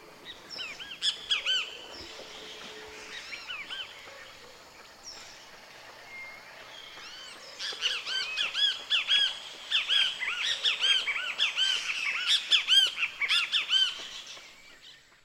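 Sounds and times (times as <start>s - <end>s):
great kiskadee singing from tree branches: 0.0s - 14.8s
busy chorus of birdsong: 0.0s - 15.2s.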